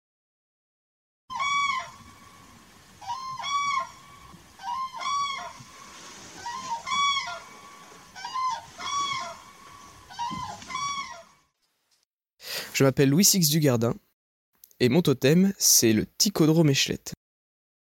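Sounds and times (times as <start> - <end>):
flock of common cranes calling in flight: 1.3 - 11.5
speech: 12.8 - 14.1, 14.8 - 17.2.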